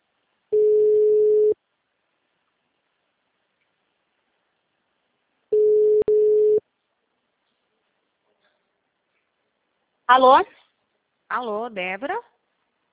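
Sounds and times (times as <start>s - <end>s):
telephone ringback tone while a caller waits for an answer: 0.5s - 1.6s, 5.5s - 6.6s
speech: 10.1s - 10.6s, 11.3s - 12.3s.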